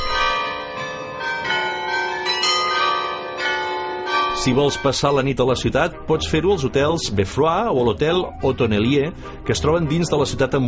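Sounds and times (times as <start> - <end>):
carillon bells playing a melody: 0.0 - 5.8
speech: 4.4 - 10.6.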